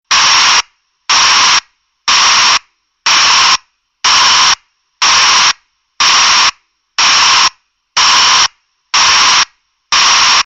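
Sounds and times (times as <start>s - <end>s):
broadband alarm: 0.1s - 10.4s.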